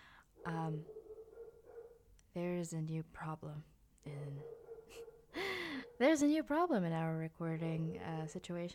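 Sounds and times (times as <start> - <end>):
speech: 0.4 - 1.0, 2.4 - 5.1, 6.0 - 8.7
dog barking right next to a room: 0.4 - 2.0, 4.4 - 6.0.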